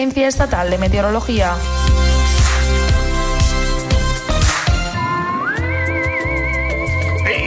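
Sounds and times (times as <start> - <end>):
speech: 0.0 - 2.1
beat-driven music: 0.0 - 7.4
person whistling an easygoing melody: 5.0 - 7.4.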